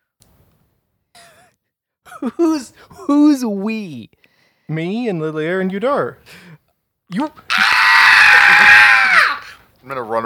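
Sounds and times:
speech: 2.1s - 7.6s, 9.8s - 10.2s
loud shrill human scream: 7.5s - 9.6s.

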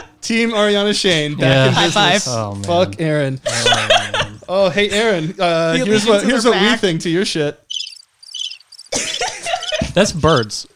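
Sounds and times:
laughter: 0.0s - 7.4s, 9.0s - 10.6s
speech: 0.2s - 7.6s, 10.0s - 10.7s
human vocal noises with wavering, sliding pitch: 1.0s - 6.0s
cricket chirps: 7.6s - 10.0s.

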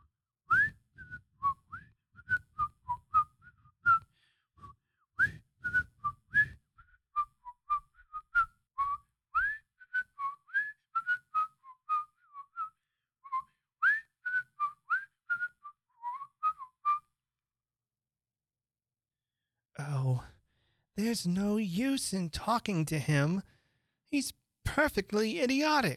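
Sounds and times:
man whistling a tune: 0.5s - 17.3s
speech: 21.0s - 25.9s.

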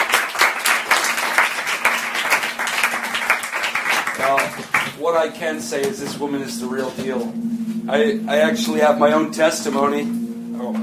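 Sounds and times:
crowd applause in a room full of people: 0.0s - 5.1s
speech: 4.6s - 10.8s.

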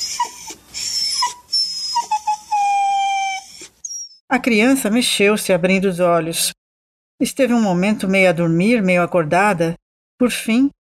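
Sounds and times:
dog whimpering in high thin whines: 0.0s - 4.2s
speech: 4.3s - 6.6s, 7.2s - 10.8s.

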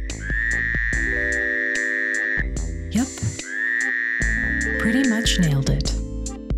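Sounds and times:
male Fowler's toad calling: 0.0s - 5.6s
animal calls: 0.2s - 2.5s, 3.4s - 5.2s.

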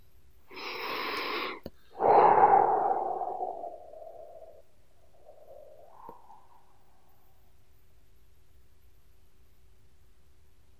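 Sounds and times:
deep breathing in and out: 0.5s - 7.6s.

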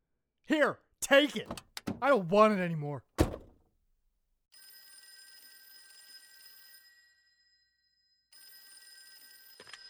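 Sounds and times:
speech: 0.5s - 3.1s
thud: 3.2s - 3.6s.

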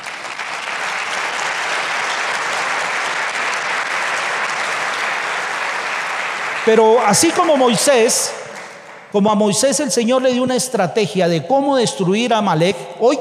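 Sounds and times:
large audience applauding loudly: 0.0s - 9.2s
speech: 6.6s - 8.4s, 9.1s - 13.1s.

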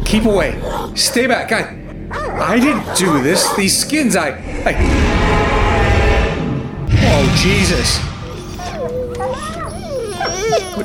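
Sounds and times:
speech: 0.1s - 5.6s, 7.0s - 8.1s
dogs whining and whimpering: 0.6s - 3.9s, 8.2s - 10.8s.

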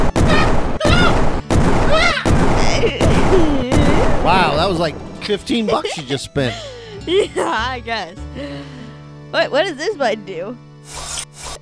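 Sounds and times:
video game cannon fire: 0.0s - 5.7s
video game music: 0.0s - 11.5s
laughter: 1.9s - 7.8s
speech: 4.7s - 11.2s.

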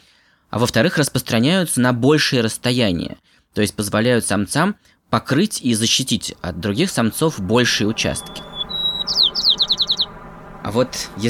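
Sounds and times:
speech: 0.5s - 8.6s, 10.6s - 11.2s
white-crowned sparrow singing a thin whistle and buzzy descending chirps: 7.0s - 11.2s.

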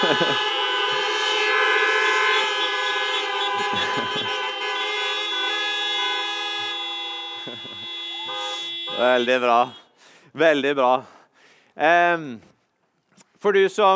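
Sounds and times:
laughter: 0.0s - 1.6s, 2.5s - 4.9s, 6.6s - 9.4s
several car horns honking: 0.0s - 10.0s
speech: 9.0s - 11.2s, 11.8s - 12.5s, 13.4s - 13.9s.

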